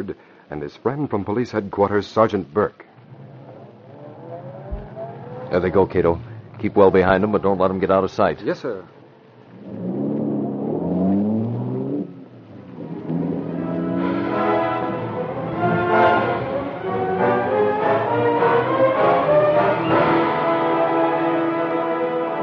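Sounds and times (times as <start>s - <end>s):
speech: 0.0s - 3.2s, 5.5s - 9.0s
car engine revving and accelerating through the gears: 2.9s - 7.5s, 9.2s - 22.3s.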